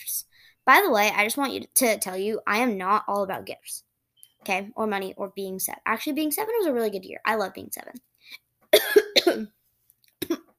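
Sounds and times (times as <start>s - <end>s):
speech: 0.6s - 9.6s
choking coughs from choking on saliva: 8.7s - 9.5s, 10.2s - 10.5s.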